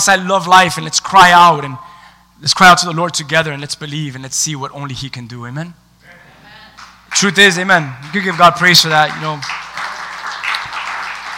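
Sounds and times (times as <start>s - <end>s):
speech: 0.0s - 5.8s, 7.1s - 9.6s
audience clapping: 6.7s - 7.4s, 8.0s - 11.3s.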